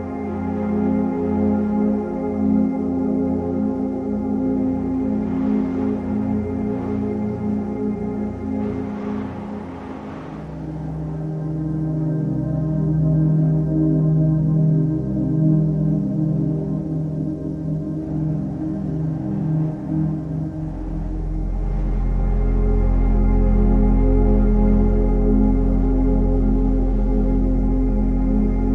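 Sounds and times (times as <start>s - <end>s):
slow ambient music with sustained low tones: 0.0s - 28.7s
wind whooshing through a snowy forest: 4.6s - 11.8s.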